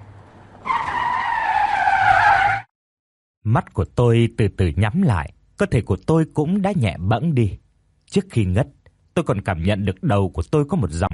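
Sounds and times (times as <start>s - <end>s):
car tires screeching in a skid: 0.0s - 2.7s
speech: 3.5s - 11.1s.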